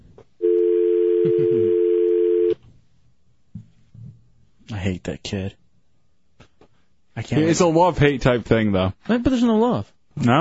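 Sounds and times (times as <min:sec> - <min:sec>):
telephone dial tone after a hang-up: 0:00.4 - 0:02.6
speech: 0:01.2 - 0:01.8, 0:04.8 - 0:05.6, 0:07.2 - 0:10.3.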